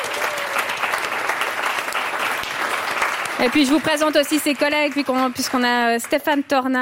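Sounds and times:
audience applause: 0.0 - 6.7
speech: 3.4 - 6.7.

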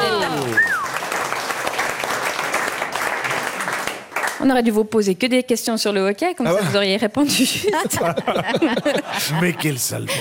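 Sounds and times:
audience applause at a quiz game: 0.0 - 4.4
whistle: 0.6 - 1.0
speech: 4.4 - 10.1
laughter: 6.5 - 10.1.

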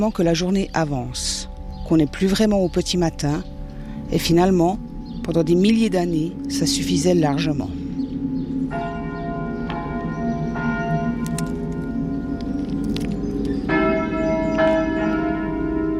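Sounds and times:
speech: 0.0 - 3.5, 4.1 - 7.8
church bells pealing: 0.0 - 15.9.

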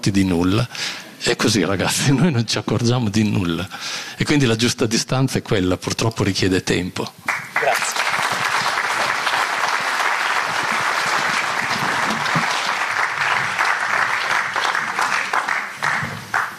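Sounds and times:
speech: 0.0 - 7.9
sustained applause from a sizable audience: 7.3 - 16.5.

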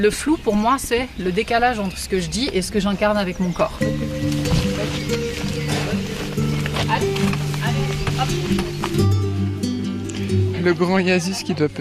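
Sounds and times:
speech: 0.0 - 4.4, 10.6 - 11.7
cattle hooves clattering and stamping: 2.4 - 9.4.

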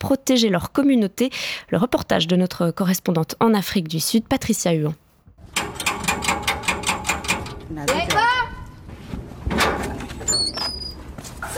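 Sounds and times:
speech: 0.0 - 5.0
rattling metallic knocks: 5.4 - 8.3
home door in Mitchell's Plain Cape Town South Africa squeaking open: 9.6 - 11.5.

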